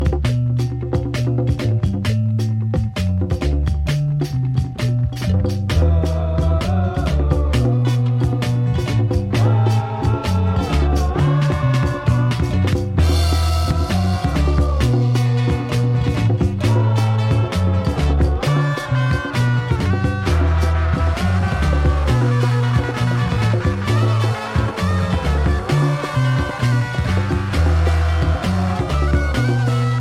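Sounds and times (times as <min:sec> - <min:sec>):
Afro funk disco boogie music, West African disco: 0:00.0 - 0:29.9.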